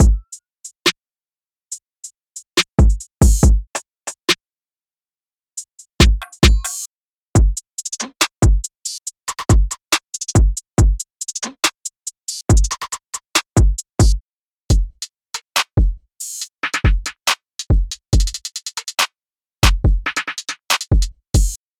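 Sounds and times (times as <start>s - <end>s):
UK drill and UK grime drum beat: 0.0s - 0.3s, 2.6s - 3.7s, 6.0s - 6.8s, 7.4s - 8.7s, 9.3s - 11.7s, 12.5s - 16.0s, 16.7s - 19.0s, 19.6s - 21.6s.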